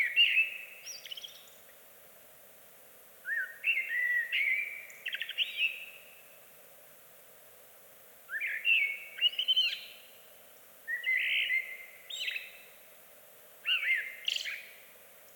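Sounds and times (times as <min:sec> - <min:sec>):
Eurasian blackbird mellow whistled song phrases: 0:00.0 - 0:01.7, 0:03.3 - 0:06.2, 0:08.3 - 0:10.1, 0:10.9 - 0:12.8, 0:13.6 - 0:14.9
light background hiss: 0:00.0 - 0:15.3.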